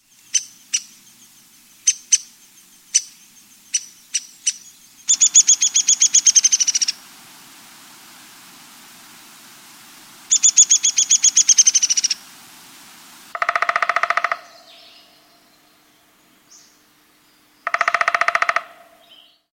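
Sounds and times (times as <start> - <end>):
downy woodpecker: 2.9 - 7.0, 10.3 - 12.2, 13.3 - 15.1, 17.6 - 19.3.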